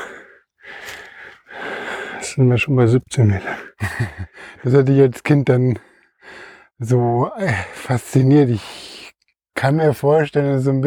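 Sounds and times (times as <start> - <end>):
heavy breathing catching breath after exertion: 0.0 - 2.4, 3.4 - 4.7, 5.8 - 6.8
speech: 2.4 - 8.9, 9.6 - 10.8
laughter: 3.8 - 4.3.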